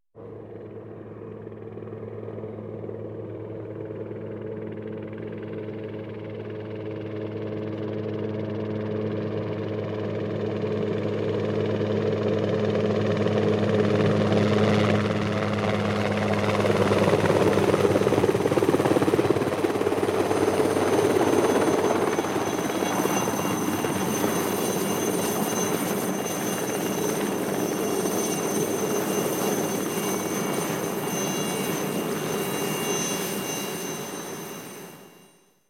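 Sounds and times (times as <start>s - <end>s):
helicopter approaching on helipad: 0.2s - 35.4s.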